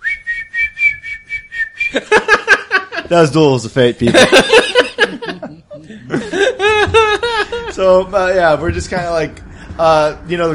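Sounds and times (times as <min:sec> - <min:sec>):
person whistling a short melody: 0:00.0 - 0:02.0
laughter: 0:01.8 - 0:03.2, 0:03.9 - 0:08.1
speech: 0:01.9 - 0:02.3, 0:03.1 - 0:04.6, 0:07.8 - 0:10.5.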